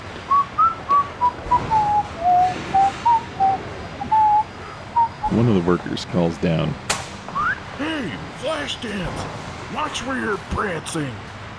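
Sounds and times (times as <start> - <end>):
man whistling a folk tune while walking around a site: 0.3 - 5.3
speech: 5.3 - 6.9, 8.7 - 11.4.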